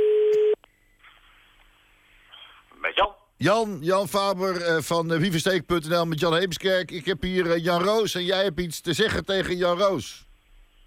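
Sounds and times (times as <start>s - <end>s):
telephone line tone while placing a call: 0.0s - 0.6s
speech: 3.4s - 10.3s.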